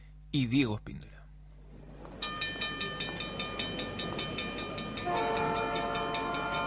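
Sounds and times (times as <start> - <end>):
speech: 0.3 - 1.1
train rumbling past with rhythmic clatter: 1.6 - 6.6
loud sustained train horn blast: 5.0 - 6.6.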